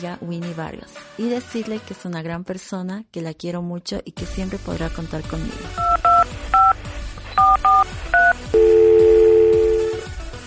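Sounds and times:
speech: 0:00.0 - 0:05.9
telephone keypad dialing tones: 0:05.8 - 0:06.8, 0:07.4 - 0:10.0
steady sustained ringing tone on a telephone line: 0:07.4 - 0:10.1.

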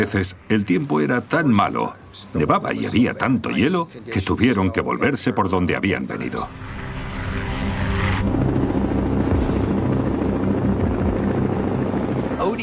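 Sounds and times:
speech: 0:00.0 - 0:06.7
Black Hawk helicopter rotors thrumming with engine-like roar: 0:07.4 - 0:12.6.

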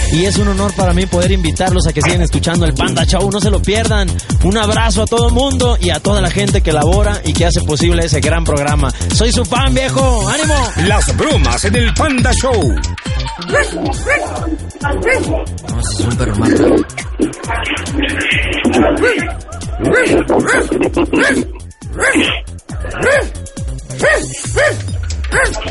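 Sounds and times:
speech: 0:00.1 - 0:25.6
laughter: 0:10.2 - 0:24.5
dog yipping and barking: 0:13.3 - 0:15.5, 0:18.7 - 0:25.6.

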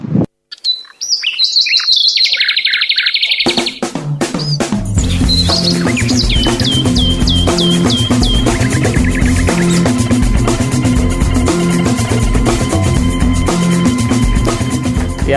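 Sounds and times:
bright bird chirps and trills: 0:00.5 - 0:15.0
busy loud music jingle: 0:05.0 - 0:15.3.

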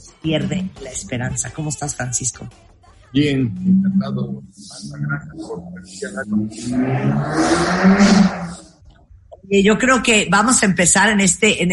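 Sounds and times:
speech: 0:00.0 - 0:08.7, 0:09.4 - 0:11.7
car engine revving outside heard through a window: 0:03.4 - 0:08.8.

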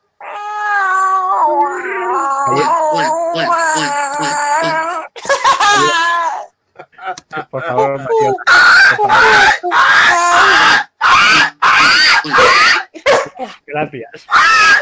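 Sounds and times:
cat yowling in a long caterwaul: 0:00.2 - 0:06.5, 0:07.6 - 0:13.3, 0:14.3 - 0:14.8
laughter: 0:02.5 - 0:03.1, 0:05.2 - 0:06.0, 0:06.8 - 0:09.6
speech: 0:02.5 - 0:04.4.

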